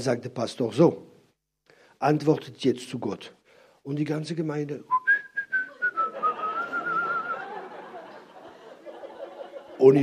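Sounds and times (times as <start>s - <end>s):
speech: 0.0s - 1.1s, 2.0s - 5.0s, 9.8s - 10.0s
dense wash of noise: 0.0s - 10.0s
person in a church audience whistling: 4.9s - 7.5s
church audience whistling: 4.9s - 8.2s
laughter: 5.7s - 10.0s.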